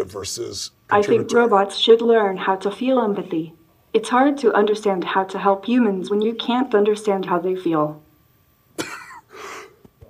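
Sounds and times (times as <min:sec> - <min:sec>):
speech: 0:00.0 - 0:08.0
person coughing: 0:08.8 - 0:09.8.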